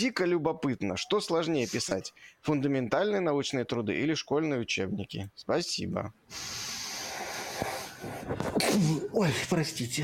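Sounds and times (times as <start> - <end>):
speech: 0.0 - 6.7, 7.6 - 10.0
faint hiss: 0.0 - 10.0
person sneezing: 8.5 - 9.2.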